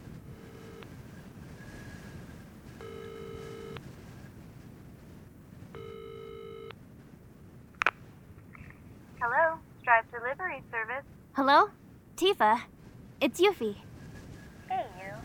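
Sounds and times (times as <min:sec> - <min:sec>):
mobile phone ringback tone: 0:00.1 - 0:00.9, 0:02.8 - 0:03.8, 0:05.8 - 0:06.7
speech: 0:09.2 - 0:13.9.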